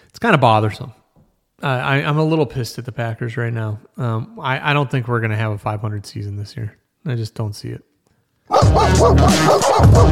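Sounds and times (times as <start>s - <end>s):
speech: 0.2s - 1.0s, 1.6s - 7.9s, 8.5s - 10.1s
dog barking with loud yapping woofs: 8.5s - 10.1s.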